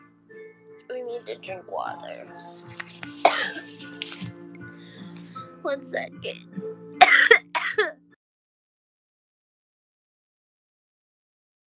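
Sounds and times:
speech: 0:01.1 - 0:02.9, 0:05.6 - 0:06.6
person coughing fit: 0:03.2 - 0:03.8, 0:07.0 - 0:08.0.

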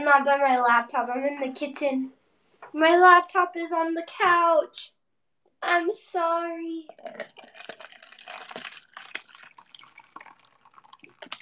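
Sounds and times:
speech: 0:00.0 - 0:05.0, 0:05.6 - 0:07.8
soup poured from a hot pot into a container: 0:06.8 - 0:11.3.

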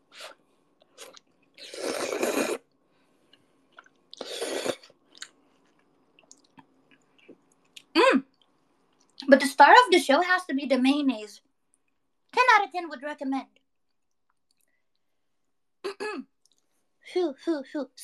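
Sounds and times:
person slurping overflowing instant noodles: 0:01.0 - 0:02.7, 0:04.1 - 0:05.0
speech: 0:09.3 - 0:11.5, 0:12.7 - 0:13.6, 0:17.1 - 0:18.0.

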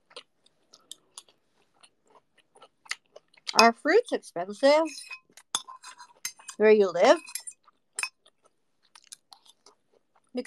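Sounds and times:
chewing and biting while eating mango: 0:00.0 - 0:03.6, 0:07.6 - 0:10.4
speech: 0:03.6 - 0:05.2, 0:06.6 - 0:07.4.

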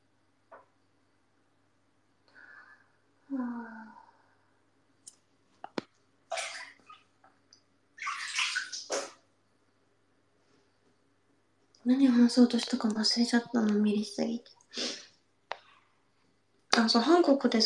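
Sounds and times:
soft breathy vocal sound: 0:02.3 - 0:04.6
water splashing in a bath while hair is washed: 0:05.7 - 0:09.3
speech: 0:11.9 - 0:14.6, 0:16.8 - 0:17.6.

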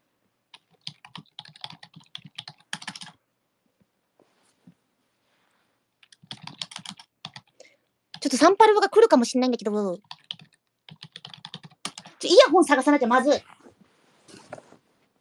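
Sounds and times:
computer keyboard typing: 0:00.5 - 0:03.2, 0:06.0 - 0:08.6, 0:10.0 - 0:12.2
soft rustling: 0:03.7 - 0:06.0, 0:13.4 - 0:15.1
speech: 0:08.2 - 0:10.1, 0:12.6 - 0:13.6.

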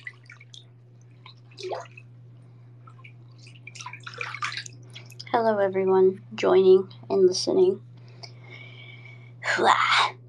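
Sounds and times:
water dripping into a bathtub during a soak: 0:00.0 - 0:05.4
steady low hum: 0:00.0 - 0:10.2
speech: 0:01.6 - 0:02.0, 0:05.3 - 0:07.9, 0:09.6 - 0:09.9.

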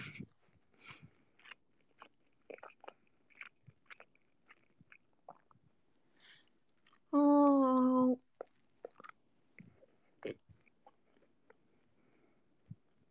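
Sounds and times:
crunchy chewing close to microphone: 0:00.2 - 0:05.6, 0:08.2 - 0:12.2.

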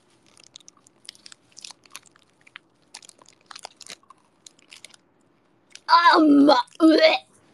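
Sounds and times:
chewing gummy candy: 0:00.0 - 0:05.9
speech: 0:05.9 - 0:07.3.

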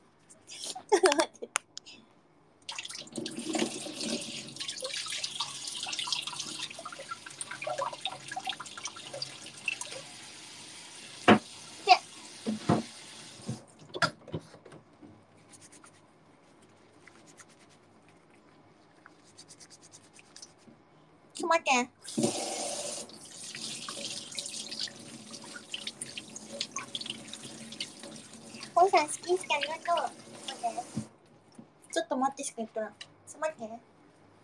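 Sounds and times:
speech: 0:00.9 - 0:01.6, 0:21.7 - 0:21.9, 0:32.5 - 0:33.8
water splashing and dripping: 0:02.7 - 0:10.2, 0:23.0 - 0:31.1
water running from a tap as hands are washed at a sink: 0:02.7 - 0:13.6, 0:22.0 - 0:31.1.

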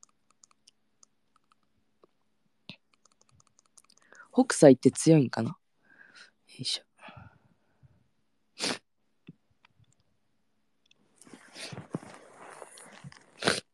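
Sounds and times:
speech: 0:04.4 - 0:05.6, 0:06.6 - 0:06.9
sharp breathy nose sniffs: 0:08.6 - 0:08.8, 0:11.3 - 0:13.7
scuffling rustling noise: 0:11.2 - 0:13.4.

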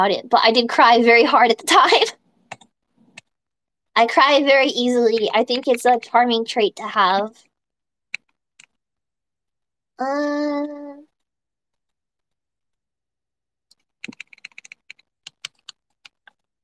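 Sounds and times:
speech: 0:00.0 - 0:02.2, 0:04.0 - 0:07.5, 0:10.0 - 0:11.0
crisp typing on a computer keyboard: 0:02.5 - 0:03.3, 0:13.8 - 0:16.5.

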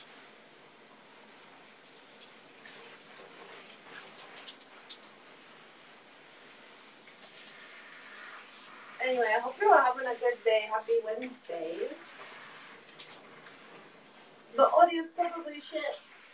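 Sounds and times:
shower water running: 0:00.0 - 0:16.3
water droplet taps and splashes: 0:01.4 - 0:06.1, 0:06.8 - 0:07.6, 0:11.1 - 0:11.5, 0:12.1 - 0:14.2
speech: 0:09.1 - 0:12.2, 0:14.6 - 0:16.1.

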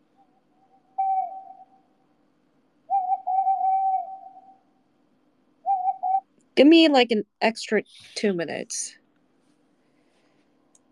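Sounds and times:
faint low hum: 0:00.0 - 0:10.9
bird calling with hooting whistled notes: 0:00.2 - 0:01.9, 0:02.9 - 0:04.7, 0:05.6 - 0:06.2
speech: 0:06.6 - 0:09.0.

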